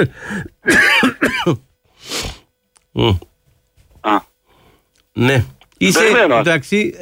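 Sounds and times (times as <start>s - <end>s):
speech: 0.0s - 2.4s, 3.0s - 3.3s, 4.0s - 4.3s, 5.2s - 7.0s
person coughing harshly: 0.4s - 1.6s.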